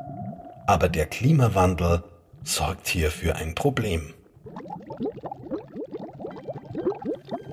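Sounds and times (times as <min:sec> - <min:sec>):
methane gas bubbles rising through seawater: 0:00.0 - 0:00.7, 0:04.3 - 0:07.5
speech: 0:00.7 - 0:04.2.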